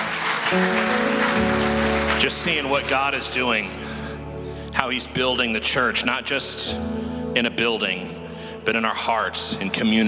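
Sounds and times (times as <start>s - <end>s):
audience applause: 0.0s - 3.7s
sustained musical tones: 0.2s - 10.0s
speech: 0.5s - 0.9s, 2.2s - 3.8s, 4.8s - 10.0s.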